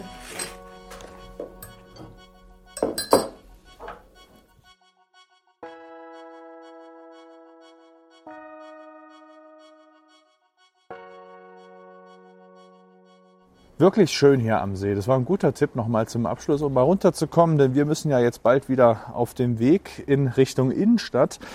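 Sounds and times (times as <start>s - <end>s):
teacups clinking together in a toast: 0.1s - 2.2s, 2.8s - 4.0s
speech: 13.8s - 21.5s.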